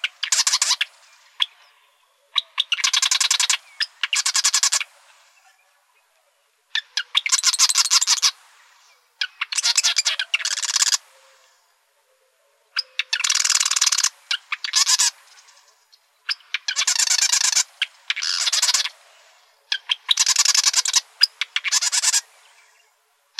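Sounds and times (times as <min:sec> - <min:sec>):
marsh wren rattled song in Arizona: 0:00.0 - 0:01.6, 0:02.3 - 0:04.9, 0:06.7 - 0:08.4, 0:09.2 - 0:11.0, 0:12.8 - 0:22.8.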